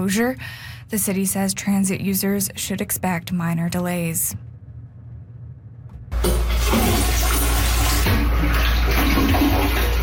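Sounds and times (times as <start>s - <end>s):
speech: 0.0s - 4.5s
public toilet flushing: 6.1s - 10.0s.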